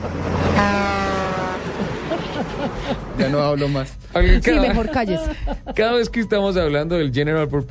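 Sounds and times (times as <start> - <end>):
car horn blast: 0.5 - 1.8
noisy background: 1.4 - 7.6
laughter: 1.6 - 6.3
speech: 2.4 - 7.6.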